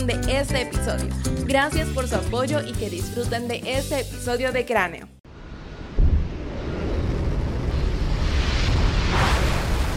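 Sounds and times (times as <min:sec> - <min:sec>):
speech: 0:00.0 - 0:05.2
rocket engines roaring lifting off from a launch pad: 0:05.3 - 0:09.9.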